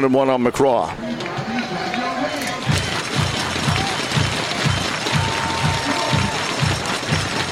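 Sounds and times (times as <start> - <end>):
speech: 0.0 - 1.4
large baseball stadium crowd roaring: 1.0 - 7.5
scattered voices rising from the stands: 1.0 - 7.5
rhythmic thumping or clapping: 2.4 - 7.5.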